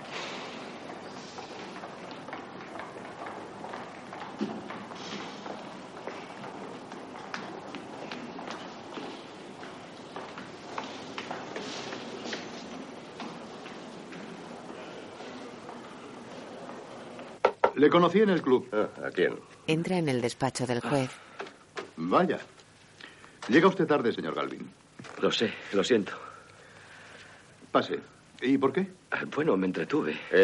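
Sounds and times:
footsteps running down courthouse stairs: 0.0 - 17.5
speech: 17.8 - 21.2, 22.1 - 22.5, 23.5 - 26.2, 27.7 - 30.4.

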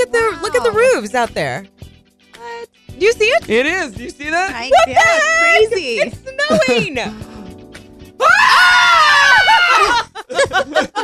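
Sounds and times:
speech: 1.0 - 1.7, 3.0 - 7.3, 8.2 - 11.0
laughter: 4.7 - 7.2, 9.3 - 11.0
loud sustained scream like a playful Halloween yell: 8.2 - 9.9.

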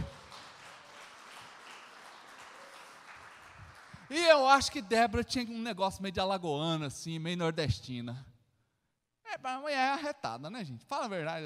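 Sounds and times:
audience applauding: 0.0 - 4.4
speech: 4.1 - 8.3, 9.4 - 11.4.

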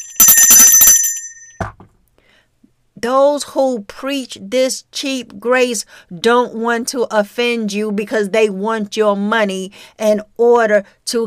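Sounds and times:
bell ringing in a rapid rattling trill: 0.0 - 1.6
speech: 3.0 - 11.2.

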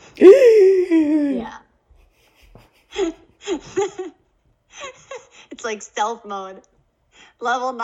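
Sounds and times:
loud drawn-out voiced gasp of surprise: 0.0 - 1.6
speech: 0.2 - 0.4, 5.7 - 6.8, 7.4 - 7.8.

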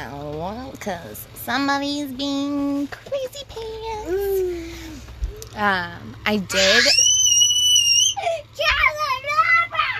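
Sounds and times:
speech: 0.0 - 4.6, 5.6 - 7.0
young child squealing excitedly: 6.5 - 9.9.

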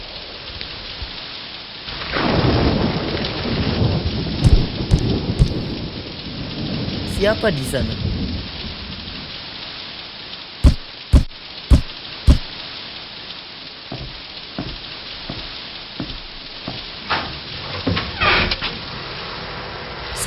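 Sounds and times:
heavy rainstorm: 0.0 - 20.2
sharp loud bangs: 4.4 - 5.7, 10.6 - 12.5
soft thumps: 4.4 - 5.7, 10.6 - 12.5
speech: 7.2 - 8.1.

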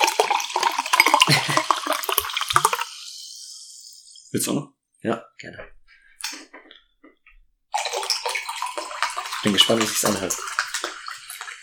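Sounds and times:
drink pouring into a glass: 0.0 - 4.0, 7.7 - 11.6
fizzing drink in a glass: 0.0 - 4.4, 7.7 - 11.6
laughter: 1.2 - 2.1
speech: 4.4 - 5.8, 9.4 - 10.5.

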